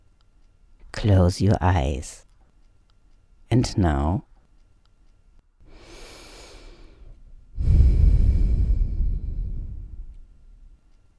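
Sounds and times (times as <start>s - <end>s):
speech: 1.0s - 2.2s, 3.5s - 4.3s
slow breathing of a person lying on their back during a relaxation exercise: 5.6s - 10.7s.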